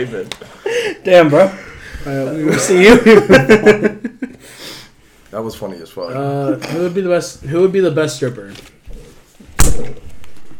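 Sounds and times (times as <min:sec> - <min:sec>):
speech: 0:00.0 - 0:04.1, 0:05.3 - 0:08.8, 0:09.8 - 0:10.1
laughter: 0:02.3 - 0:04.4
object slammed down onto a hard surface: 0:09.6 - 0:10.2.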